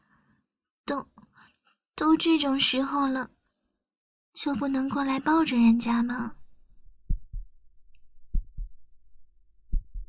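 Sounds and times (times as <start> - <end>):
speech: 0.9 - 1.1, 2.0 - 3.4, 4.4 - 6.4
fast heartbeat: 6.8 - 7.6, 8.2 - 8.9, 9.6 - 10.0.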